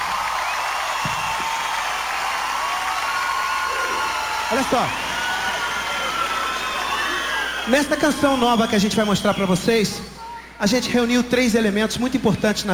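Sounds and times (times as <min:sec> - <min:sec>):
whoops from the crowd: 0:00.0 - 0:08.9
large crowd applauding and cheering: 0:00.0 - 0:09.9
speech: 0:04.5 - 0:05.0, 0:07.7 - 0:12.7.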